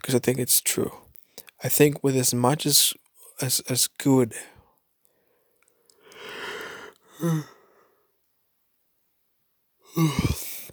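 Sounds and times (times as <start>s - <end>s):
speech: 0.0s - 1.0s, 1.6s - 4.6s, 7.2s - 7.6s, 10.0s - 10.4s
person yawning: 6.4s - 7.7s, 9.9s - 10.7s.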